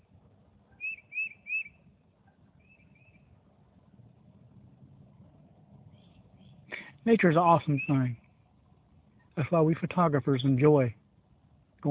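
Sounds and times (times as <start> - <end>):
steady low rumble of traffic or an idling engine: 0.0 - 11.8
tufted titmouse chirping outdoors in nature: 0.8 - 1.8, 7.7 - 8.1
speech: 7.0 - 8.2, 9.4 - 11.0.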